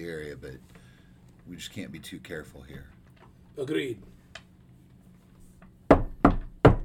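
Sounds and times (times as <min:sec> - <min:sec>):
speech: 0:00.0 - 0:00.8, 0:01.5 - 0:03.0, 0:03.6 - 0:04.2
firm knocking on a door: 0:05.9 - 0:06.8.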